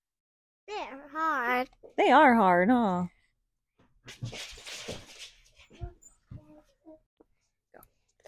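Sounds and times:
speech: 0.9s - 3.2s, 4.1s - 5.0s
dogs wrestling and scuffling on a floor: 4.0s - 6.1s.

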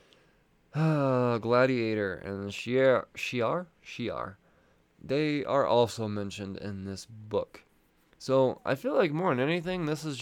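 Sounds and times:
person yawning with a sustained voiced groan: 0.7s - 1.3s
speech: 0.8s - 4.4s, 5.0s - 10.2s.

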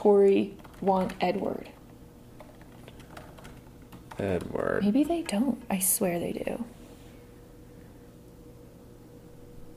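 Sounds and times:
speech: 0.0s - 1.8s, 4.2s - 6.8s
low steady hum: 0.0s - 9.7s
quiet typing on a computer keyboard: 0.2s - 5.4s.

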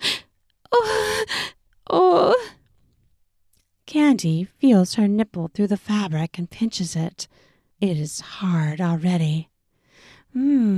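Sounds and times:
woman gasping: 0.0s - 1.6s
speech: 3.9s - 10.7s.

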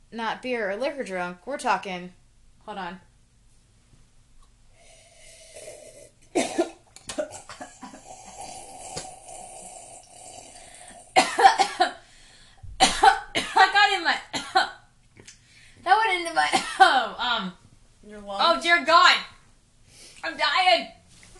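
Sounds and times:
faint hum: 0.0s - 21.3s
speech: 0.1s - 3.1s, 16.2s - 19.3s, 20.2s - 21.0s
strained wheezy voiced gasps: 4.7s - 6.2s, 7.6s - 11.2s, 12.0s - 12.6s
coughing fit as something goes up the nose: 5.6s - 9.4s, 10.5s - 12.0s, 12.8s - 14.8s, 16.4s - 17.0s.

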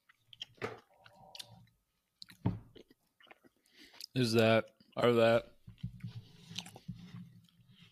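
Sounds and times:
person chewing lemon bars with a bland crust: 0.0s - 5.0s, 5.7s - 7.8s
speech: 4.2s - 5.5s.

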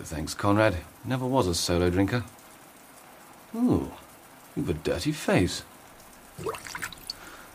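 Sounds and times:
speech: 0.0s - 2.4s, 3.5s - 4.0s, 4.6s - 5.7s, 6.4s - 7.0s
water running into a sink: 6.3s - 7.4s.

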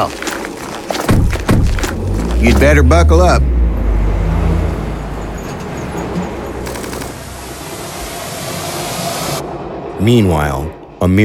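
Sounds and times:
speech: 0.0s - 0.2s, 2.4s - 3.6s, 10.0s - 11.2s
road noise: 0.0s - 11.0s
truck engine rumbling as it pulls away: 1.4s - 7.7s.

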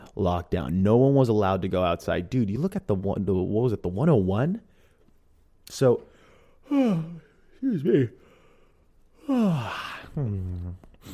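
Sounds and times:
speech: 0.2s - 4.7s, 5.7s - 6.1s, 6.7s - 8.2s, 9.3s - 11.1s
person yawning: 6.6s - 7.4s, 9.2s - 11.1s.

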